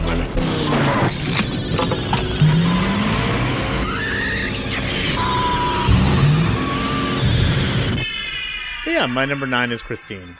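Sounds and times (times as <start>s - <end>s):
car engine revving: 0.0s - 8.1s
speech: 9.0s - 10.3s.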